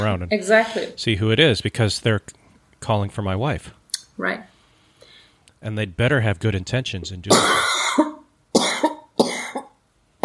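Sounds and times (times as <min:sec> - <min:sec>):
speech: 0:00.0 - 0:04.5, 0:05.6 - 0:08.1
person coughing: 0:07.3 - 0:10.2.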